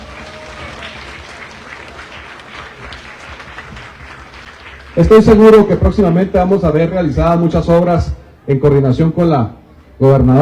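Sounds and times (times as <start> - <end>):
audience applause: 0.0 - 6.0
speech: 5.0 - 10.4.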